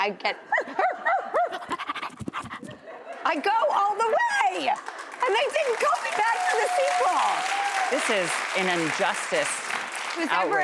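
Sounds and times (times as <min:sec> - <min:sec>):
speech: 0:00.0 - 0:00.9, 0:03.3 - 0:10.6
person panting like a dog: 0:01.5 - 0:02.8.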